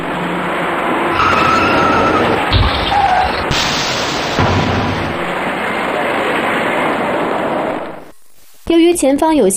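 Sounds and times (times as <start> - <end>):
road and engine noise: 0.0 - 8.1
car brakes screeching in a long skid: 1.1 - 5.3
car rear-ending another vehicle: 2.4 - 5.3
speech: 8.9 - 9.5.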